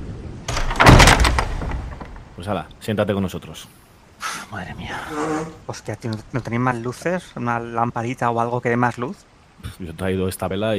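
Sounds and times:
door pulled shut with scraping rush and heavy thud: 0:00.5 - 0:02.4
door rattle: 0:00.5 - 0:02.4, 0:05.1 - 0:05.7
speech: 0:02.4 - 0:03.8, 0:04.5 - 0:10.7.

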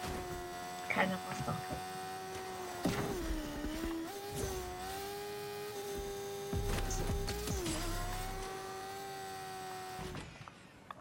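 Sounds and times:
video game motorcycle engine revving: 0:00.0 - 0:10.5
speech: 0:01.0 - 0:02.0.

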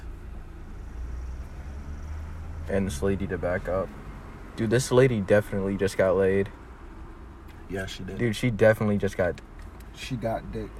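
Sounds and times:
car passing by outside: 0:00.6 - 0:07.0
speech: 0:02.7 - 0:04.0, 0:04.6 - 0:06.6, 0:07.7 - 0:10.7.

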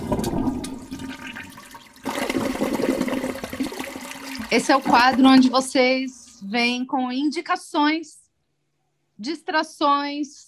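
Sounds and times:
toilet flushing: 0:00.0 - 0:06.0
speech: 0:04.5 - 0:08.2, 0:09.2 - 0:10.4.

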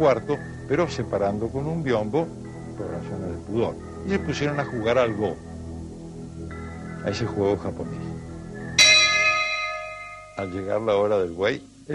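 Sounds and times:
speech: 0:00.0 - 0:05.5, 0:07.0 - 0:08.1, 0:10.4 - 0:11.9
Buddhist pilgrim's small handbell struck: 0:08.8 - 0:10.7.

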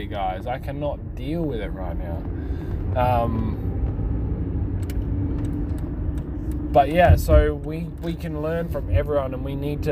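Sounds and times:
speech: 0:00.0 - 0:03.7, 0:06.7 - 0:09.8
road traffic rumble of passing vehicles: 0:00.0 - 0:09.8.

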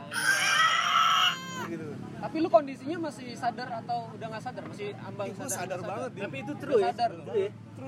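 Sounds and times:
imitated shrill high-pitched scream on an open aah vowel: 0:00.1 - 0:01.7
speech: 0:02.3 - 0:07.8.

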